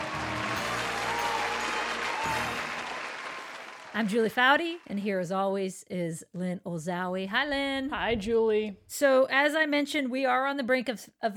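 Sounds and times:
large crowd applauding: 0.0 - 4.9
speech: 4.0 - 11.3.

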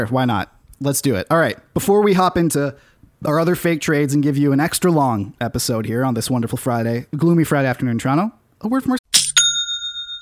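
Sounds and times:
speech: 0.0 - 9.0
sale notification chime from an online commerce platform: 9.2 - 10.1.

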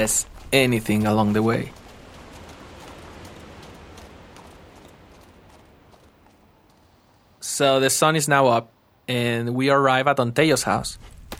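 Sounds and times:
speech: 0.0 - 1.8, 7.6 - 11.1
horse hooves clip-clopping at a walking pace: 0.0 - 7.4, 11.0 - 11.3
steady outdoor noise: 0.0 - 11.3.

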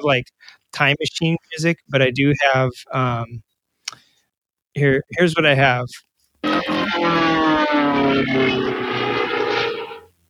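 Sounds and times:
speech: 0.0 - 4.0, 4.8 - 9.0
airplane engine droning: 6.4 - 10.1.

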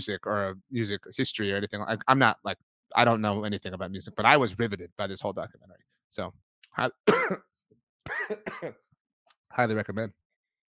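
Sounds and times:
speech: 0.0 - 8.8, 9.5 - 10.2
person coughing and clearing throat: 7.1 - 7.4, 8.1 - 8.8.

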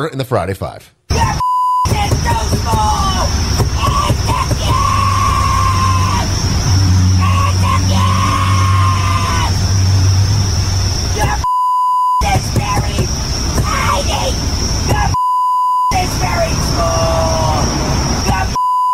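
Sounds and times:
speech: 0.0 - 1.0, 2.5 - 3.4
woman screaming and yelling at somebody in a vehicle: 1.1 - 9.6, 13.6 - 15.2, 16.2 - 18.6
traffic hum: 1.1 - 11.5, 12.2 - 15.2, 15.9 - 18.6.

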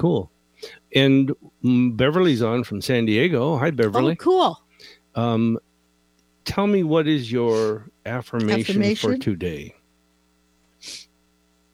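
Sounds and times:
speech: 0.0 - 5.7, 6.4 - 9.8, 10.8 - 11.0
faint steady hum: 0.0 - 11.7
quick sneeze: 7.5 - 7.7, 10.8 - 11.1.

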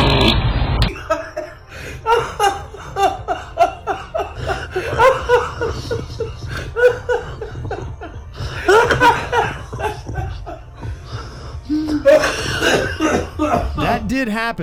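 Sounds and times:
man farting outside a front door: 0.0 - 0.9
laughter: 0.9 - 14.0
speech: 14.2 - 14.6.

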